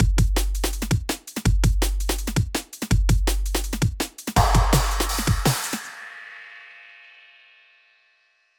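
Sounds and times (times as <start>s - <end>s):
drum and bass punch: 0.0s - 6.2s.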